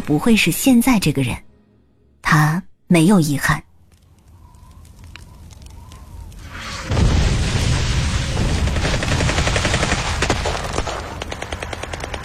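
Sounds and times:
speech: 0.1 - 1.5, 2.3 - 3.7
chaotic gunfire on a winter night around a small courtyard: 6.8 - 12.2.

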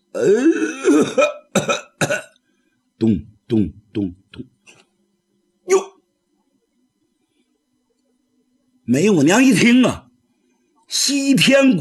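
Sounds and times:
rasping throat-clearing: 0.1 - 2.4, 5.7 - 6.0
storyteller vocally imitating coughing: 0.1 - 2.4, 5.7 - 6.0
speech: 0.2 - 1.3, 3.0 - 4.1, 9.0 - 10.0, 11.3 - 11.8.

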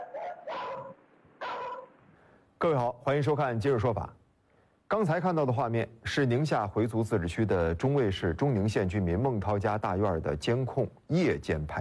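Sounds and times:
guard dog barking wildly in a yard at night: 0.0 - 2.0
speech: 2.6 - 4.2, 4.9 - 11.7.

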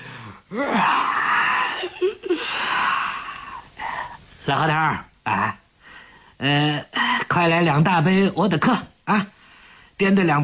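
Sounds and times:
man yawning: 0.2 - 4.1
speech: 0.5 - 1.1, 4.5 - 5.6, 6.4 - 9.4, 10.0 - 10.4.

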